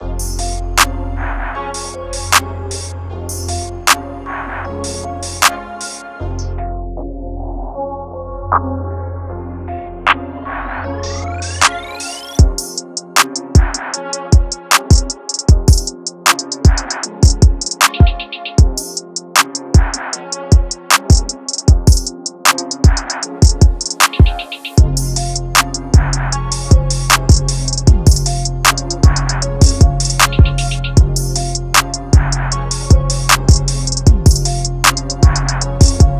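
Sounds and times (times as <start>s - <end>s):
drum kit: 1.8s - 4.0s, 4.8s - 6.0s, 12.4s - 36.1s.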